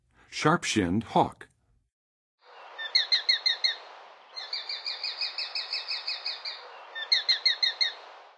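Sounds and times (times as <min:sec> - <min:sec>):
Sharp-shinned Hawk calling in the Western USA: 0:02.8 - 0:08.0.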